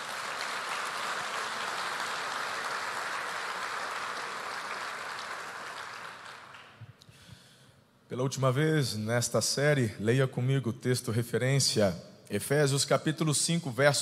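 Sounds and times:
audience applauding in a large room: 0.0s - 6.9s
speech: 8.1s - 14.0s.

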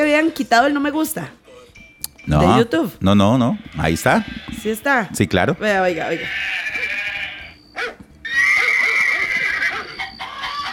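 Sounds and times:
speech: 0.2s - 1.4s, 2.3s - 6.8s
goat bleating played from a video: 3.4s - 10.7s.

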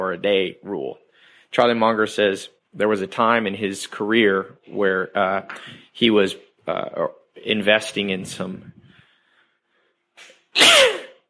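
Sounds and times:
speech: 0.1s - 8.8s
sneeze: 10.2s - 11.2s.

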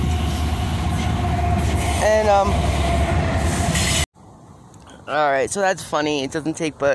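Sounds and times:
train rumbling past on the rails: 0.0s - 4.1s
speech: 2.1s - 2.7s, 5.1s - 6.9s.

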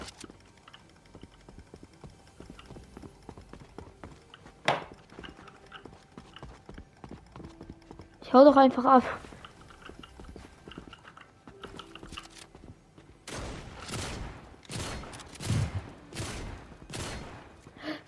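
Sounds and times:
quiet video game sound: 0.0s - 18.0s
speech: 8.3s - 9.2s
gunfire from a computer-controlled bot in a video game: 13.2s - 17.7s.

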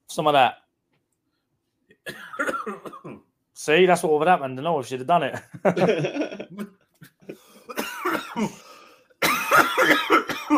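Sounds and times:
speech: 0.2s - 0.6s, 3.6s - 6.7s, 8.4s - 8.6s
person coughing in rough hacking wheezy bursts: 2.1s - 3.2s, 7.4s - 10.5s
laughter: 5.4s - 7.7s.

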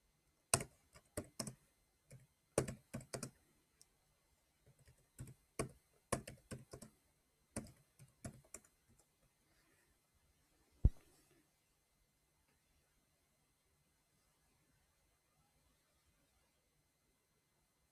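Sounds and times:
keyboard typing: 0.5s - 3.4s, 4.6s - 7.0s, 7.6s - 9.1s.

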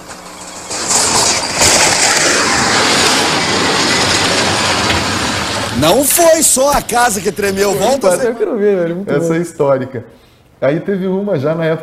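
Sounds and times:
heavy truck passing on highway: 1.8s - 6.3s
speech: 5.8s - 11.8s.

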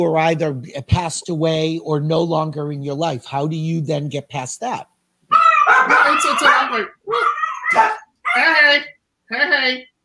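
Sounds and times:
speech: 0.0s - 4.9s, 5.8s - 9.9s
dogs barking and yipping: 5.3s - 8.4s.

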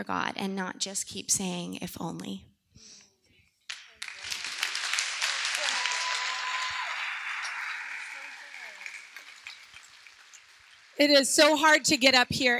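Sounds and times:
speech: 0.0s - 2.9s, 11.0s - 12.5s
crowd applause: 3.7s - 12.1s.

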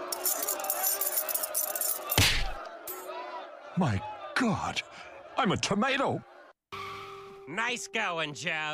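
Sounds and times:
keys jingling: 0.1s - 2.2s
speech: 3.8s - 6.3s, 7.5s - 8.7s.

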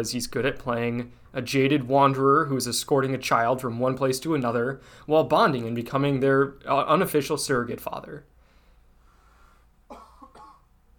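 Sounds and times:
speech: 0.0s - 8.3s
faint hum: 0.0s - 10.9s
person coughing: 9.9s - 10.7s.

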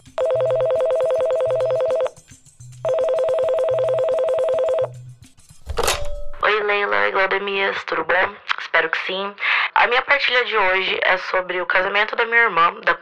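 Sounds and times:
public street payphone ringing: 0.1s - 2.2s, 2.8s - 5.0s
brief clunk: 5.5s - 6.4s
speech: 7.7s - 13.0s.

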